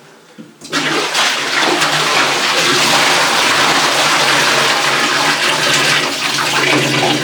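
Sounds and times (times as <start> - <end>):
about 20 litres of water gushing out and splashing: 0.6 - 7.2.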